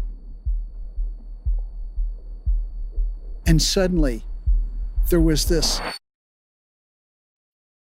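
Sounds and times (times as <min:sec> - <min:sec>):
deep heartbeat thumping: 0:00.0 - 0:05.8
speech: 0:03.5 - 0:04.3, 0:05.1 - 0:06.0.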